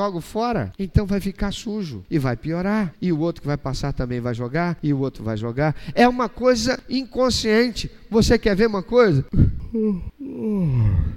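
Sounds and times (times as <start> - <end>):
speech: 0.0 - 11.1
person yawning: 9.4 - 11.1.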